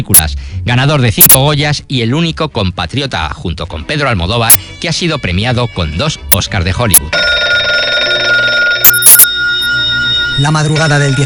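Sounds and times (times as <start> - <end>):
speech: 0.0 - 7.3, 10.4 - 11.2
telephone ringing: 6.3 - 11.2
bell-like telephone ringing bursts: 7.0 - 11.2.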